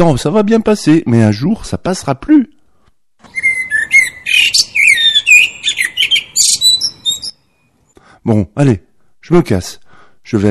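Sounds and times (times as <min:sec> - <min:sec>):
speech: 0:00.0 - 0:02.6, 0:04.3 - 0:04.8, 0:08.2 - 0:10.4
blackbird singing a rich varied song: 0:03.2 - 0:07.7.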